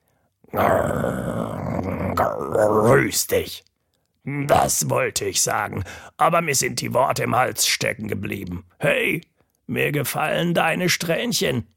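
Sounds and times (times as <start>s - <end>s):
deep rough growl from a giant lion-headed flower: 0.5s - 2.9s
speech: 0.5s - 11.7s.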